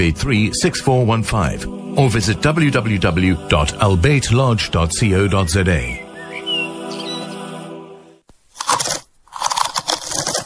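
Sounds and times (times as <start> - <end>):
speech: 0.0 - 6.0
crunching potato chips: 8.5 - 10.4.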